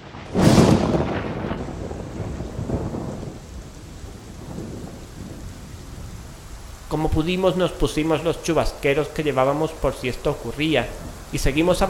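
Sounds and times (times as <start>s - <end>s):
thunderclap booming through a valley between mountains: 0.0s - 6.2s
heavy, dense rain pouring down: 0.0s - 11.8s
speech: 6.9s - 11.8s.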